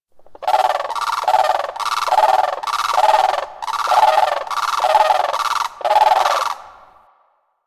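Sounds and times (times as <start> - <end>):
birds calling in a forest: 0.2 - 7.0.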